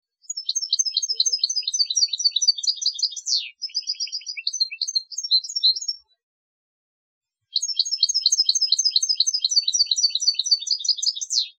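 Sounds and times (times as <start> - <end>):
goldfinch singing: 0.2 - 6.0, 7.5 - 11.5.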